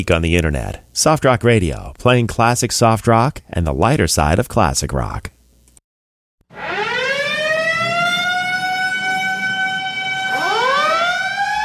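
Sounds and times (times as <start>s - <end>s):
speech: 0.0s - 5.4s
loud siren wailing: 6.5s - 11.6s.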